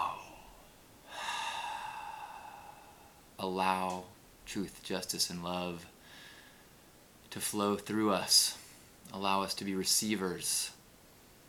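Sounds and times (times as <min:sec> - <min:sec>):
deep breath in: 0:00.0 - 0:03.3, 0:06.0 - 0:06.8
speech: 0:03.4 - 0:05.9, 0:07.3 - 0:10.8.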